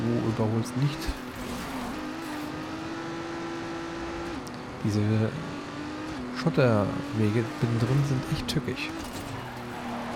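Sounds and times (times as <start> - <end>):
racing car engine revving in a racing video game: 0.0 - 10.1
speech: 0.4 - 1.3, 4.8 - 5.5, 6.4 - 9.0.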